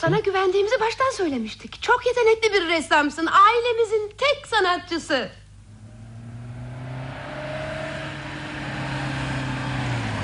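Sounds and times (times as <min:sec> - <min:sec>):
speech: 0:00.0 - 0:05.4
arriving car engine humming with low tonal drones: 0:05.6 - 0:10.2.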